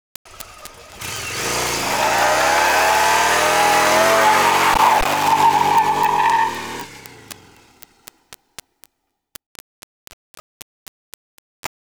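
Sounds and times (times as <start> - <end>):
Yamaha XVS 1100 Dragstar motorcycle burnout: 0.3 - 8.1.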